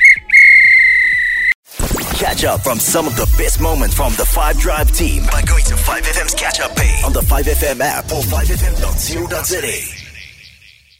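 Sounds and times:
referee's whistle blown at full time: 0.0s - 1.6s
speech: 2.2s - 10.0s.

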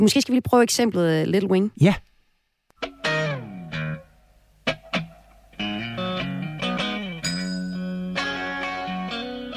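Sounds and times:
speech: 0.0s - 2.1s
slightly overdriven electric guitar playing embellished chords with slides and hammer-ons: 2.8s - 9.5s.

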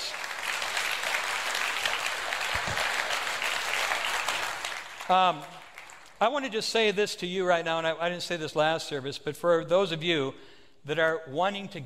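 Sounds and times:
audience clapping in praise: 0.0s - 6.3s
speech: 5.1s - 5.6s, 6.2s - 11.8s.

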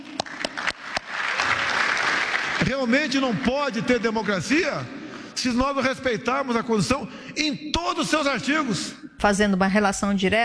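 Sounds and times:
applause for a minister at a session: 0.0s - 4.8s
speech: 2.6s - 10.4s.

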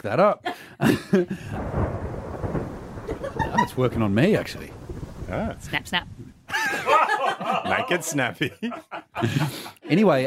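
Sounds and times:
speech: 0.0s - 2.0s, 3.7s - 10.2s
laughter: 0.5s - 1.6s, 3.0s - 4.0s, 6.5s - 10.2s
low rolling thunder in a storm: 1.4s - 7.1s.

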